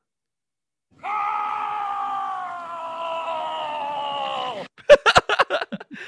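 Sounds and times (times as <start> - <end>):
man screaming while skiing downhill: 1.0 - 4.8
laughter: 4.8 - 6.0.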